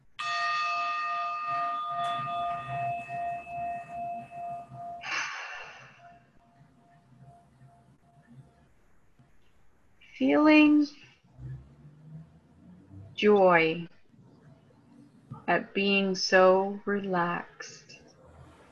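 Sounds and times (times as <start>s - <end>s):
meditation gong struck and ringing: 0.2s - 5.1s
breathy rush: 5.0s - 6.2s
speech: 10.2s - 11.0s, 13.2s - 13.9s, 15.5s - 17.8s.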